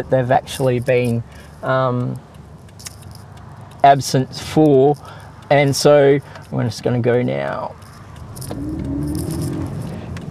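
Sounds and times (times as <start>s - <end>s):
speech: 0.0s - 2.3s, 3.8s - 7.8s, 8.5s - 9.1s
car passing in traffic: 7.7s - 10.3s.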